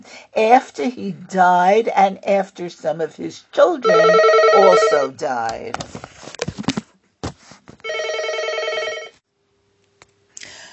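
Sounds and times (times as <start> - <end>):
speech: 0.4 - 6.2
landline telephone ringing with an electronic trill: 3.8 - 5.2, 7.8 - 9.2.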